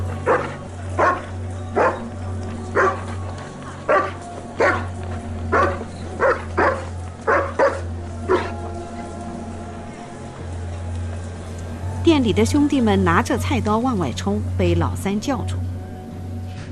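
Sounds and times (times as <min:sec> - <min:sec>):
large wolfdog barking at the door of an old tavern: 0:00.2 - 0:02.1, 0:02.7 - 0:03.2, 0:03.9 - 0:04.9, 0:05.5 - 0:08.6
speech: 0:12.2 - 0:15.7.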